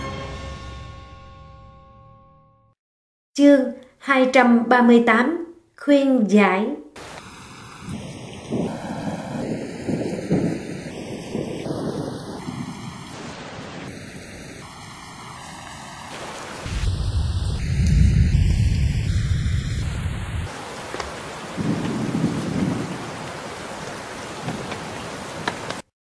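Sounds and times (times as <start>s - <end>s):
speech: 3.4s - 6.8s
steady hissing rain in a storm: 7.0s - 25.9s
deep heavy thunder rumbles in a storm: 7.8s - 25.8s.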